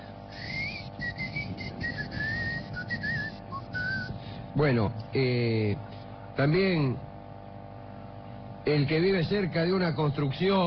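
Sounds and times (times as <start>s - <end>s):
low steady rumble of noise: 0.0s - 10.6s
person whistling a high-pitched tone imitating ear ringing: 0.3s - 4.2s
speech: 4.6s - 7.1s, 8.7s - 10.6s.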